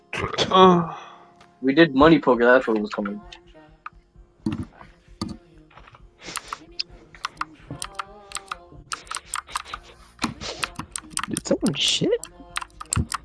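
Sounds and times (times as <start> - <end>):
speech: 0.2 - 3.4, 11.6 - 12.3
typing on a computer keyboard: 6.2 - 6.6, 7.2 - 11.5, 12.2 - 13.2.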